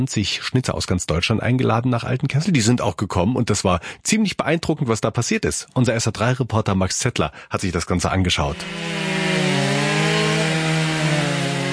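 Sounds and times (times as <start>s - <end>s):
speech: 0.0s - 9.3s
chainsaws carving wooden blocks: 8.5s - 11.7s.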